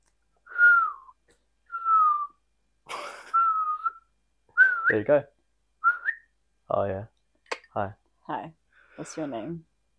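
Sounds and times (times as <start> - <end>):
person whistling a short tune: 0.5 - 2.4, 3.3 - 5.0, 5.8 - 6.3
speech: 4.9 - 5.4, 6.7 - 7.1, 7.8 - 9.9.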